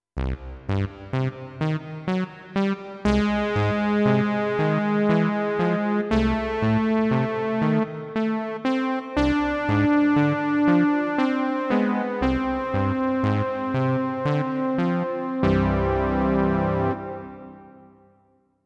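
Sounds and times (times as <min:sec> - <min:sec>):
sawtooth synth lead: 0:00.2 - 0:17.8.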